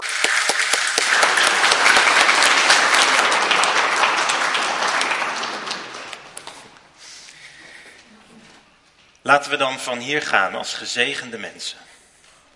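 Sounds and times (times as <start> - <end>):
crowd applauding for choir and musicians: 0.0 - 6.8
speech: 9.3 - 11.9.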